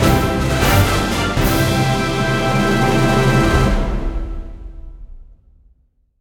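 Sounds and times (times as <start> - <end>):
big win ending jingle: 0.0 - 4.2.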